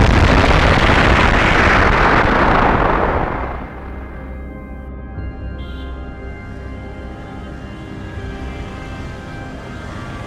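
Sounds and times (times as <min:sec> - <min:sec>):
loud explosive burst of energy: 0:00.0 - 0:04.4
dense continuous roar and rumble: 0:00.0 - 0:10.2.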